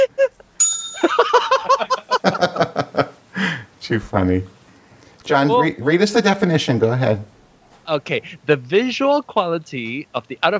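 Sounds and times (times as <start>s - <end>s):
several people laughing and giggling: 0.0s - 3.7s
bright bell ding: 0.6s - 1.6s
speech: 3.9s - 4.6s, 5.3s - 7.3s, 7.9s - 10.5s.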